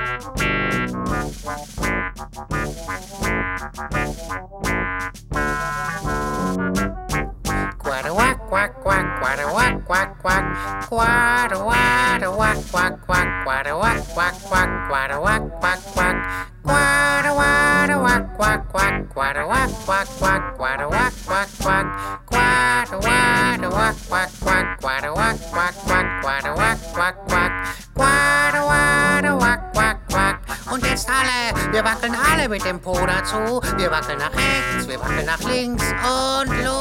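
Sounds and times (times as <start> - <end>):
bouncy quack-quack song with voices imitating ducks: 0.0 - 36.7
steady upbeat musical accompaniment: 0.0 - 36.7.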